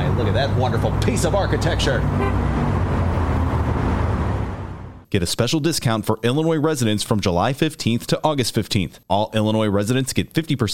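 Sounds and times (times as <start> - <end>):
city architecture tour bus engine rumbling in traffic: 0.0 - 5.1
speech: 0.3 - 2.9, 5.1 - 10.7.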